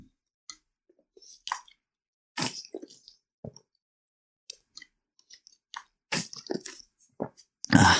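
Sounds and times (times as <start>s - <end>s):
person drinking water: 1.4s - 1.8s, 5.3s - 7.9s.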